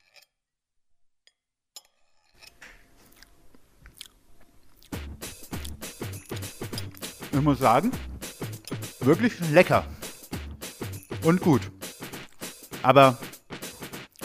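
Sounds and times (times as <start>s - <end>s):
person chewing a mouthful of plated char fish: 2.4s - 7.0s
crunchy bites: 3.0s - 5.9s
speech: 7.4s - 8.1s, 9.0s - 9.9s, 11.2s - 11.8s, 12.8s - 13.2s.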